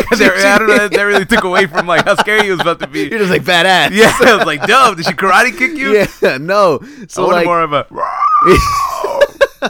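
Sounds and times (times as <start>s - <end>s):
laughter: 0.0s - 6.5s, 8.5s - 9.6s
speech: 0.1s - 9.6s
person imitating a woman's high shriek: 7.9s - 9.3s.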